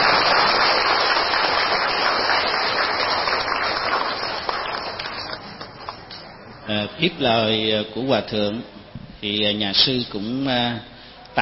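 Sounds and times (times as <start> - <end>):
large crowd applauding: 0.0 - 6.0
speech: 7.0 - 11.4.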